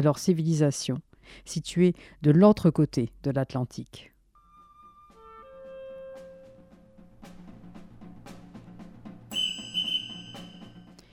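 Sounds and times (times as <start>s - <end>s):
speech: 0.0s - 4.1s
orchestral music: 4.4s - 11.1s
hammer strikes in orchestra: 9.3s - 10.9s
shrill piercing whistle blast: 9.3s - 11.0s.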